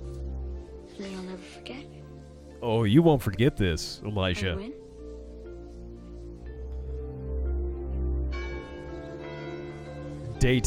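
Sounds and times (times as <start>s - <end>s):
speech: 1.0s - 2.0s, 2.6s - 4.8s, 10.4s - 10.6s
deep resonant bell ringing: 8.0s - 10.6s.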